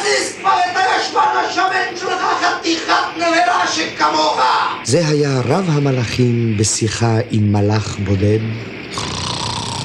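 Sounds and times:
speech: 0:00.2 - 0:09.2
human voice imitating a creaking mast with a strained groan: 0:09.0 - 0:09.8.

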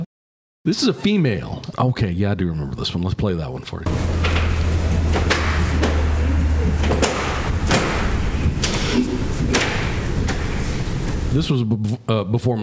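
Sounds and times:
speech: 0:00.6 - 0:04.6, 0:11.3 - 0:12.6
constant low hum: 0:03.9 - 0:11.4
doors being deadbolted and slamming shut: 0:03.9 - 0:11.4.

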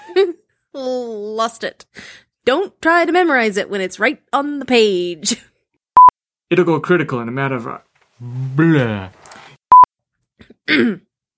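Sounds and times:
speech: 0:00.2 - 0:05.5, 0:06.5 - 0:09.2, 0:10.7 - 0:11.1
throat clearing and coughing from phlegm stuck in the throat: 0:10.4 - 0:11.1.

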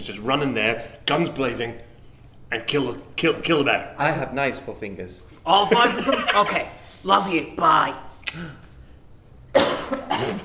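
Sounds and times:
speech: 0:00.0 - 0:01.9, 0:02.5 - 0:08.6, 0:09.6 - 0:10.4
harsh broadband coughs: 0:09.5 - 0:10.4.

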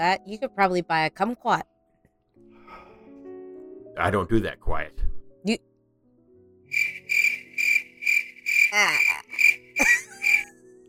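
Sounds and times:
speech: 0:00.0 - 0:01.7, 0:04.0 - 0:05.7, 0:08.7 - 0:09.1
cricket chirping: 0:06.7 - 0:10.5.

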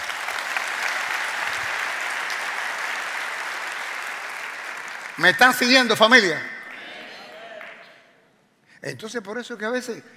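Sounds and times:
audience applauding: 0:00.0 - 0:08.0
speech: 0:05.2 - 0:06.5, 0:08.8 - 0:10.1.

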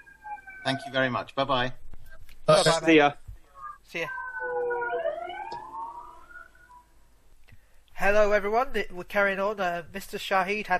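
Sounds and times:
emergency vehicle sirens wailing: 0:00.0 - 0:00.9, 0:03.6 - 0:07.0
speech: 0:00.6 - 0:01.8, 0:02.5 - 0:03.2, 0:03.9 - 0:04.2, 0:08.0 - 0:10.7.

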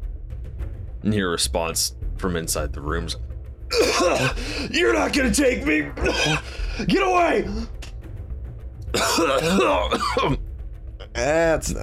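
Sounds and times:
speech: 0:01.0 - 0:07.7, 0:08.9 - 0:10.4, 0:11.2 - 0:11.8
person coughing in a harsh ragged fit: 0:03.7 - 0:04.8, 0:05.9 - 0:06.9, 0:08.9 - 0:10.4.

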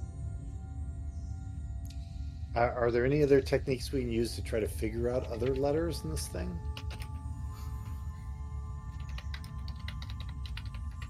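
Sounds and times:
steady low hum: 0:00.0 - 0:11.0
speech: 0:02.6 - 0:06.8
fast typing on a computer keyboard: 0:05.1 - 0:06.0, 0:06.6 - 0:07.3, 0:08.9 - 0:11.0.

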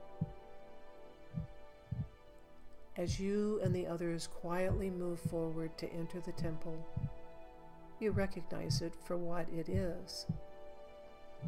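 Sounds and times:
quiet steady hum: 0:00.0 - 0:11.4
human heartbeat thumps: 0:00.1 - 0:00.4, 0:01.3 - 0:02.2, 0:03.0 - 0:07.3, 0:08.0 - 0:10.6
speech: 0:03.0 - 0:07.1, 0:08.0 - 0:10.5.

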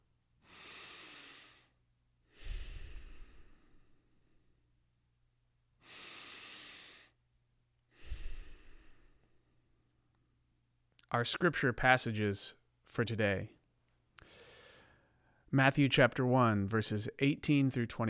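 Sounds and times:
person taking slow deep breaths: 0:00.4 - 0:04.5, 0:05.8 - 0:07.2, 0:07.9 - 0:09.5, 0:14.2 - 0:15.5
speech: 0:11.1 - 0:13.6, 0:15.5 - 0:18.0.

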